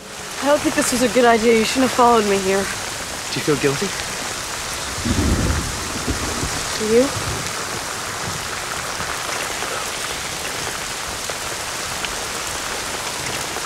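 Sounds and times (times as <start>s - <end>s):
heavy rain pouring on a field: 0.0s - 13.6s
speech: 0.4s - 2.8s, 3.4s - 4.1s, 6.8s - 7.3s
deep booming rumble of thunder: 0.4s - 12.0s.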